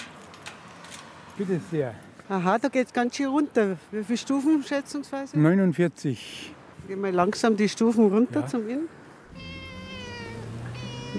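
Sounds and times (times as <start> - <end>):
speech: 1.4 - 9.5
house cat meowing loudly in a garden: 9.3 - 11.1.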